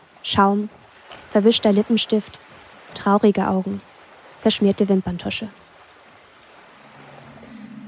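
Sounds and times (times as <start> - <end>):
ocean waves: 0.0 - 7.8
speech: 0.2 - 5.6
low droning hum: 6.7 - 7.8.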